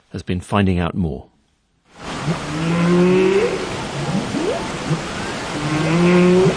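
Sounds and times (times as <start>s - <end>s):
speech: 0.2s - 1.3s, 2.3s - 4.3s
steady wash of ocean noise: 1.9s - 6.5s
humpback whale calls in the seas off Iceland: 2.1s - 6.5s.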